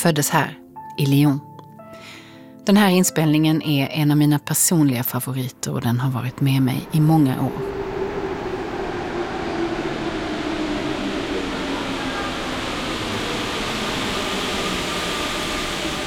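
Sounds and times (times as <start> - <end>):
speech: 0.0 - 2.0, 2.6 - 7.8
subway train in motion rumbling, heard from inside the car: 5.2 - 16.0.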